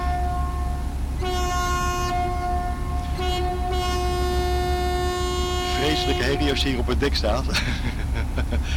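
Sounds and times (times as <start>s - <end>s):
ship's horn blast: 0.0s - 7.4s
deep engine rumble: 0.0s - 8.7s
speech: 6.0s - 8.7s
laughter: 7.3s - 8.7s.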